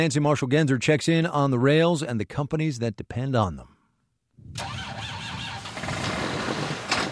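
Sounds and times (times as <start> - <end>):
speech: 0.0 - 3.8, 4.6 - 4.8
tractor engine cranking and running: 4.6 - 7.1.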